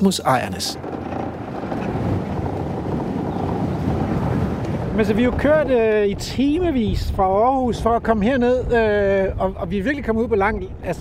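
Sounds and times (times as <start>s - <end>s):
speech: 0.0s - 0.9s, 5.0s - 10.9s
car rattling along gravel dirt road: 0.0s - 6.3s.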